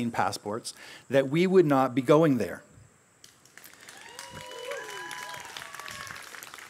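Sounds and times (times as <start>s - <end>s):
speech: 0.0s - 2.7s
applause from a sizable audience: 3.6s - 6.6s.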